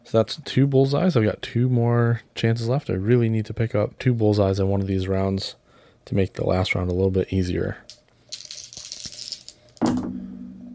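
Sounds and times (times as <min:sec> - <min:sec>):
speech: 0:00.1 - 0:07.9
dice rattling in a shaker: 0:07.8 - 0:09.9.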